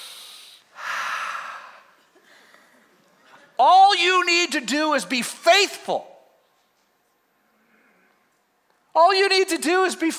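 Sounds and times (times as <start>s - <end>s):
people taking a deep breath during a sermon: 0.0s - 3.0s
speech: 3.6s - 6.1s, 9.0s - 10.1s.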